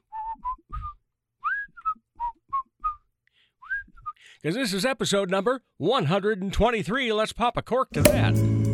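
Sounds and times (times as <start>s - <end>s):
person whistling a short bouncy pop-style tune: 0.0s - 4.2s
speech: 4.4s - 8.6s.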